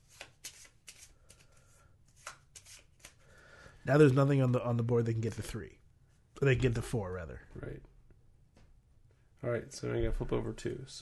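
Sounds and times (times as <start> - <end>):
deck of cards being riffle shuffled: 0.0 - 3.2
speech: 3.9 - 5.8, 6.4 - 7.9, 9.4 - 11.0.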